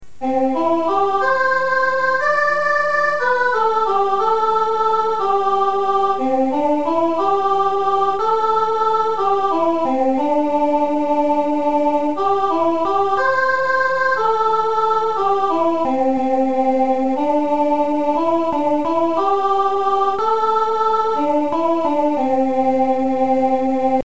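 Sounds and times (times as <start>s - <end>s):
soprano singing: 0.2s - 24.0s.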